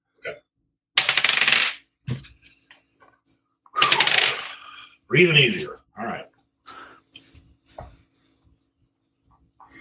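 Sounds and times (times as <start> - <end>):
dice clattering across a hard tabletop: 1.0 - 1.9, 3.8 - 4.6
speech: 5.1 - 5.8.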